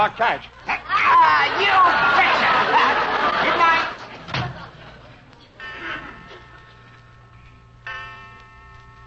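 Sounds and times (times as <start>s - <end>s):
speech: 0.0s - 0.7s, 1.3s - 3.8s
laughter: 0.6s - 5.3s
clock striking 12 o'clock: 5.6s - 9.0s.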